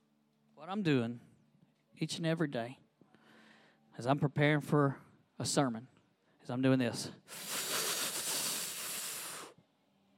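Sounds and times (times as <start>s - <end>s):
speech: 0.6s - 1.3s, 2.0s - 2.8s, 4.0s - 7.5s
deep inhale through the nose: 3.2s - 3.9s, 7.2s - 9.6s.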